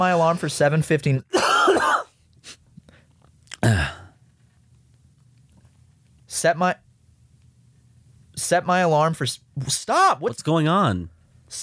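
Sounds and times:
speech: 0:00.0 - 0:01.5, 0:06.4 - 0:06.8, 0:08.5 - 0:11.6
harsh coughs: 0:01.3 - 0:02.2, 0:03.6 - 0:04.2.

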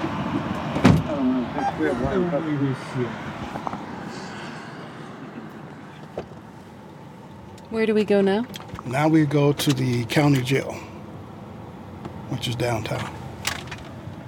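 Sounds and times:
steady low vehicle hum: 0:00.0 - 0:14.2
car door thump: 0:00.7 - 0:01.1
speech: 0:01.6 - 0:03.4, 0:07.7 - 0:10.9, 0:12.3 - 0:13.2.

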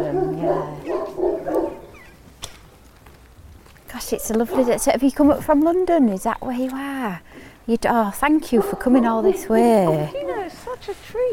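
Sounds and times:
dog barking: 0:00.0 - 0:02.0, 0:04.5 - 0:04.9, 0:08.5 - 0:09.6
speech: 0:04.1 - 0:11.3.

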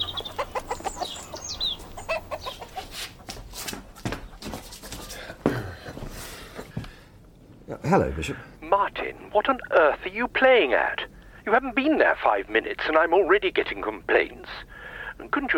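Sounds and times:
chickens clucking and squawking: 0:00.0 - 0:05.4
scuffling and rustling: 0:00.7 - 0:05.4
speech: 0:07.9 - 0:15.5.

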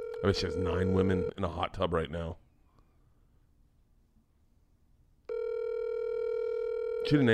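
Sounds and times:
phone call ringing tone on speakerphone: 0:00.0 - 0:01.4, 0:05.3 - 0:07.3
speech: 0:00.2 - 0:02.4, 0:07.0 - 0:07.3.

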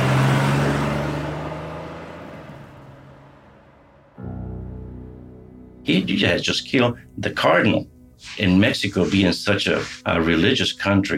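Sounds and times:
car engine roaring as the car speeds away from an airport: 0:00.0 - 0:04.2
speech: 0:05.9 - 0:11.1.

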